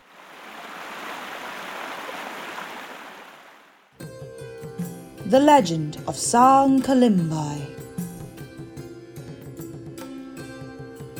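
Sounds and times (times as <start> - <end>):
Pahang River rushing in Pahang Malaysia: 0.0 - 3.9
music: 4.0 - 11.1
speech: 5.3 - 7.7.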